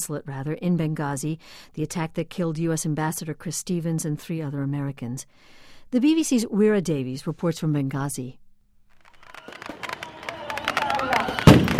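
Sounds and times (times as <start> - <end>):
speech: 0.0 - 8.4
celebratory fireworks: 9.3 - 11.7
celebratory shotgun gunfire: 11.4 - 11.7.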